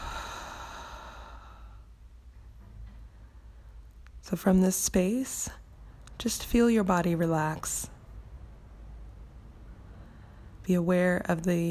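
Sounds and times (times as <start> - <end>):
slow exhale through the mouth: 0.0 - 1.9
speech: 4.2 - 5.6, 6.2 - 8.0, 10.7 - 11.6.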